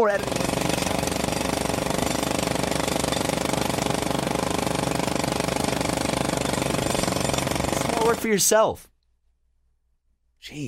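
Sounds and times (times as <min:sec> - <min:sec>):
speech: 0:00.0 - 0:00.6, 0:08.1 - 0:08.9, 0:10.4 - 0:10.6
jackhammer pounding: 0:00.0 - 0:08.4.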